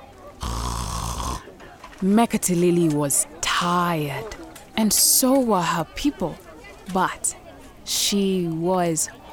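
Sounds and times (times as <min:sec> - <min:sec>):
person imitating giant frogs snoring: 0:00.4 - 0:01.4
speech: 0:02.0 - 0:09.2.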